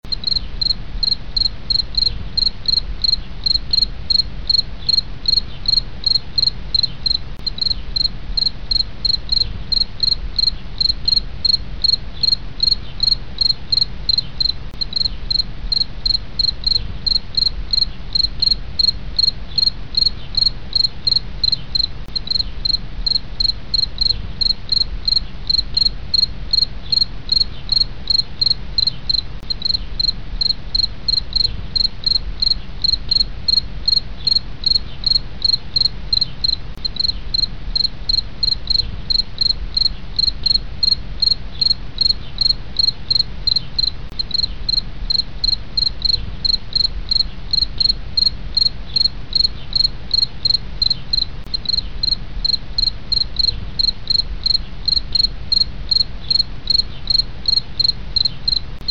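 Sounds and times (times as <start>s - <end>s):
field cricket chirping: 0.0s - 58.8s.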